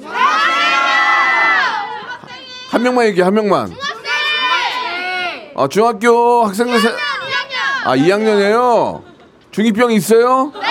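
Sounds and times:
group of middle school students shouting and cheering: 0.0s - 3.0s, 3.6s - 5.6s, 6.5s - 8.8s, 10.5s - 10.7s
speech: 2.8s - 3.9s, 5.6s - 7.1s, 7.8s - 10.6s
laughter: 7.9s - 9.5s, 10.3s - 10.7s.

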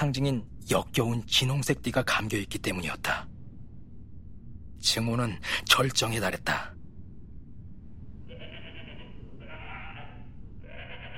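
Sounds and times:
speech: 0.0s - 3.3s, 4.8s - 6.8s
steady low rumbling noise: 0.0s - 11.1s
goat bleating: 8.3s - 11.1s.

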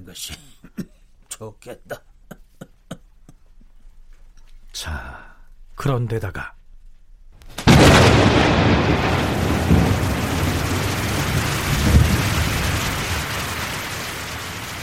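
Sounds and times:
speech: 0.1s - 0.6s, 1.4s - 2.1s, 4.8s - 6.6s
laughter: 1.9s - 3.5s
loud thunder cracking and rumbling: 7.6s - 14.8s.

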